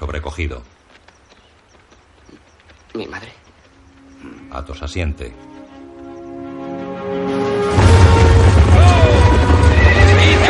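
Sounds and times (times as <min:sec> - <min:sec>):
hooves clattering: 0:00.0 - 0:10.4
speech: 0:00.3 - 0:00.8, 0:03.0 - 0:03.4, 0:04.5 - 0:05.6, 0:07.1 - 0:07.7
horses neighing and whinnying: 0:01.9 - 0:06.4
steady low rumble: 0:07.3 - 0:10.4.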